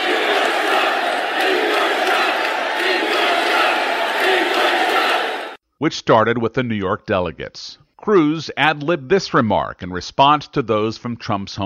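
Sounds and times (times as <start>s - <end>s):
large indoor convention crowd booing and chanting: 0.0s - 5.6s
speech: 5.8s - 11.6s.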